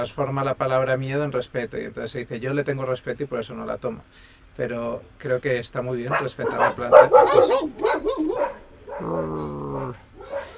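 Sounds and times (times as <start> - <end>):
speech: 0.0 - 10.4
dog barking: 6.1 - 10.5.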